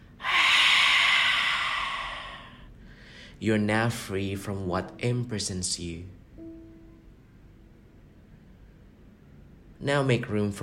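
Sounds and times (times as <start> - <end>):
long exhale through an open mouth: 0.1 - 2.7
speech: 3.4 - 6.2, 9.8 - 10.6.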